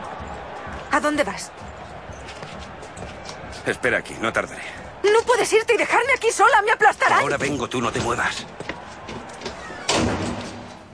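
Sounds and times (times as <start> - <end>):
speech: 0.9 - 1.7, 3.6 - 8.6
metal door unlocked with a key opening with a metallic thud: 9.1 - 10.8.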